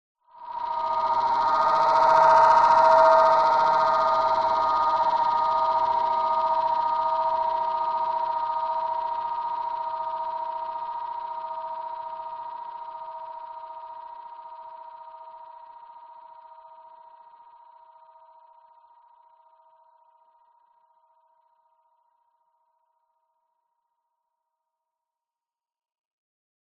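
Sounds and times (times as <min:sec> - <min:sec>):
shrill mid range delayed FM buzzing: 0:00.4 - 0:18.1.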